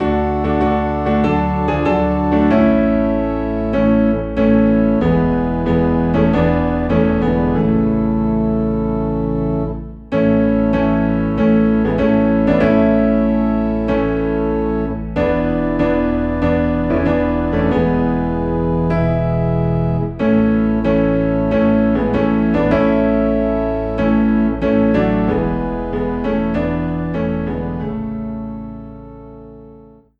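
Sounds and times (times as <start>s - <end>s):
low organ in A: 0.0s - 30.1s
low piano in A: 0.0s - 30.1s.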